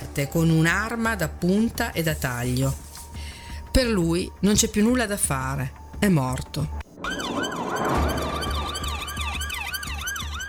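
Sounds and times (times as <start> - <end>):
speech: 0.2 - 2.8, 3.7 - 7.2
several ambulance sirens wailing: 7.0 - 10.4.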